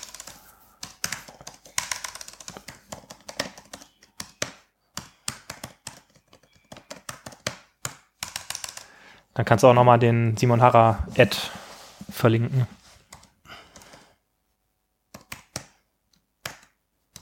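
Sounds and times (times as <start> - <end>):
forceful typing on a computer keyboard: 0.0 - 9.0, 15.1 - 17.2
speech: 9.4 - 11.6, 12.2 - 12.8.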